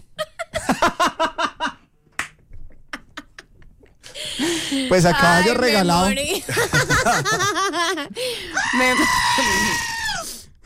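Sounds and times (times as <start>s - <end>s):
laughter: 0.2s - 1.8s, 6.3s - 8.2s
speech: 4.7s - 9.9s
goat bleating and screaming: 8.6s - 10.2s.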